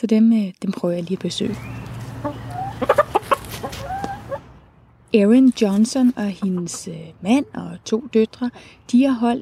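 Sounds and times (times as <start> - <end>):
speech: 0.0 - 3.1, 5.1 - 9.4
backyard hens clucking: 1.5 - 4.6, 5.6 - 7.4.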